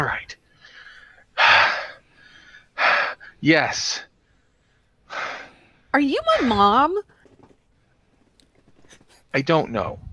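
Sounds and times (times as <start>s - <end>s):
heavy breathing: 0.5s - 3.4s, 4.0s - 6.8s
speech: 3.4s - 4.1s, 6.0s - 7.1s, 9.3s - 10.1s.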